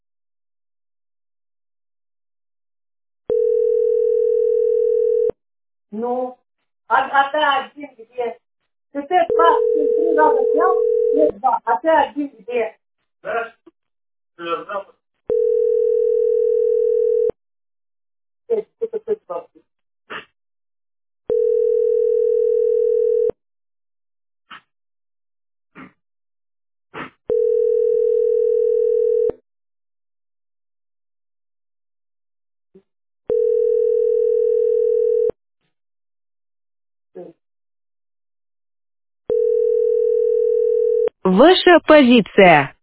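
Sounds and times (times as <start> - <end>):
telephone ringback tone for an unanswered call: 3.3 - 5.4, 9.3 - 11.3, 15.3 - 17.4, 21.3 - 23.4, 27.3 - 29.4, 33.3 - 35.4, 39.3 - 41.1
speech: 6.0 - 13.6, 14.4 - 15.0, 18.5 - 20.3, 41.2 - 42.8
short bursts of voice sounds: 9.3 - 11.6.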